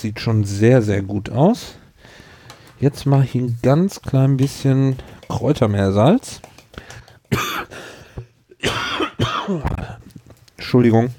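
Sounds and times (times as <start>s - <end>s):
speech: 0.0s - 1.8s, 2.8s - 6.5s, 10.7s - 11.1s
person coughing harsh chesty coughs: 7.3s - 7.9s, 8.5s - 10.0s.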